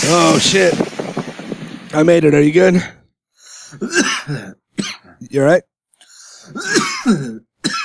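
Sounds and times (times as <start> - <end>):
speech: 0.1 - 0.9, 1.9 - 3.0, 3.7 - 4.6, 5.3 - 5.7, 6.5 - 7.5
person clearing throat: 3.8 - 5.2, 6.5 - 7.8
person coughing from inhaling smoke: 3.8 - 5.2, 6.5 - 7.8.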